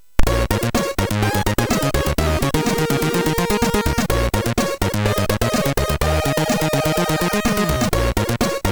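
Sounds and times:
funk bass on a MOS6581R3 sound chip: 0.2s - 8.6s.

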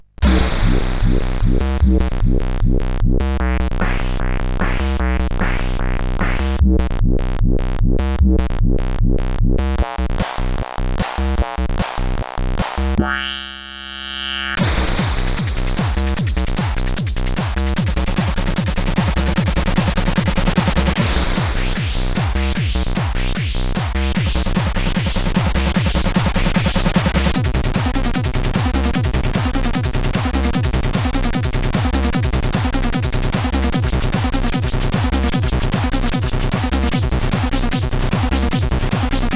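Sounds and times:
acid synth bassline with drum machine beat: 0.0s - 39.3s
drum machine beat: 0.2s - 6.9s, 14.6s - 39.3s.

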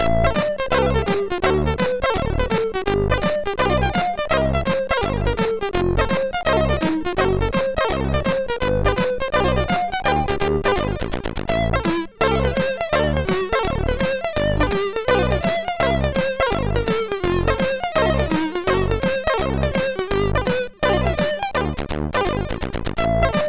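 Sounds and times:
jazz on a MOS6581R2 SID chip: 0.0s - 23.4s.

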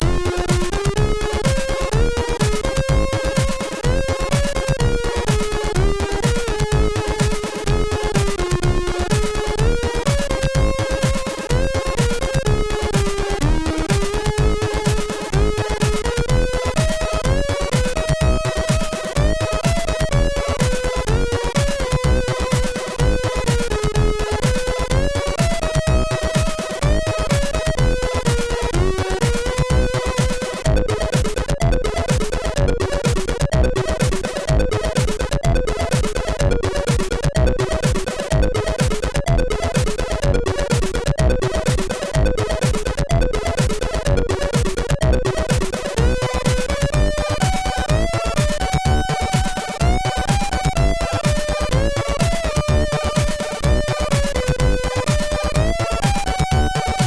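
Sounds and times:
chiptune music on a MOS6581R3 SID chip: 0.0s - 57.0s.

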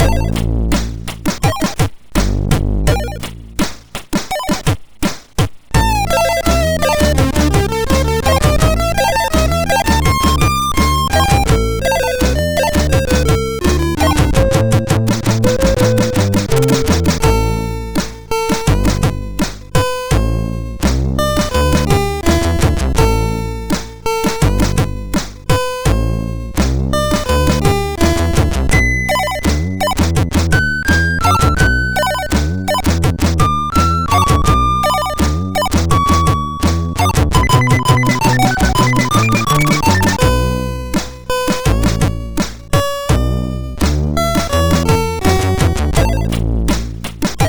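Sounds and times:
beat on MOS6581 sound chip: 0.0s - 47.4s.

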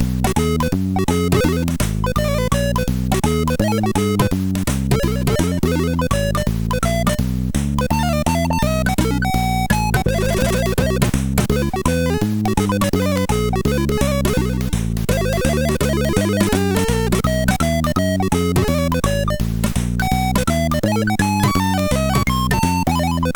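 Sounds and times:
blues organ on MOS6581R4 SID chip: 0.2s - 23.3s.

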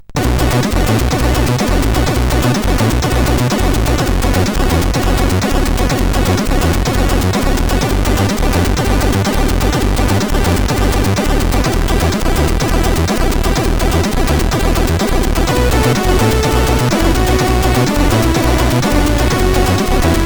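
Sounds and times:
SID CSG8580R5 chip intro tune: 0.2s - 20.2s.

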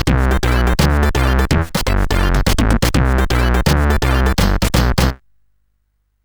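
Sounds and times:
chiptune music on CSG8580R5 SID chip: 0.1s - 5.2s.

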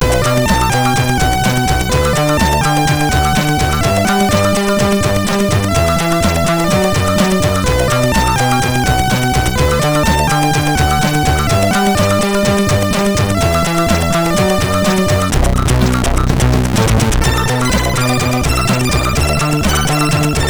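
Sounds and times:
MOS 6581R4 SID chip intro music: 0.0s - 16.0s, 16.9s - 20.4s.

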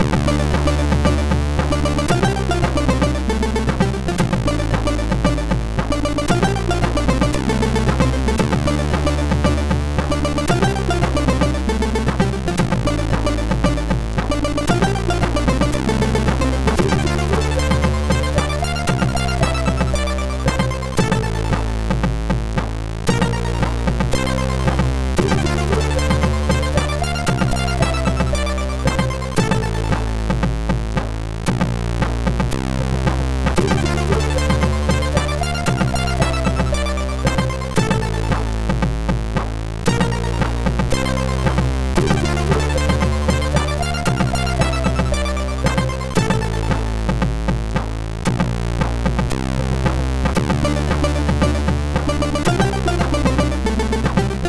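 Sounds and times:
chiptune intro music on a MOS6581R4 sound chip: 0.0s - 31.8s, 32.4s - 54.4s.

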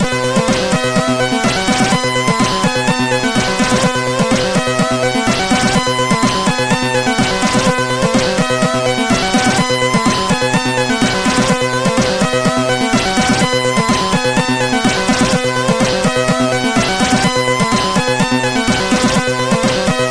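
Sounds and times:
trance music on SID 8580 sound chip: 0.0s - 20.0s.

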